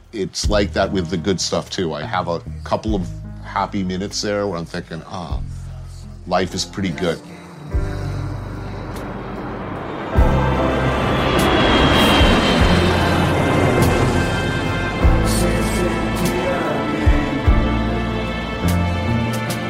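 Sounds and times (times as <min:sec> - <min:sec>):
speech: 0:00.1 - 0:05.6, 0:06.3 - 0:07.9
airplane engine roar flying low overhead: 0:07.4 - 0:19.6.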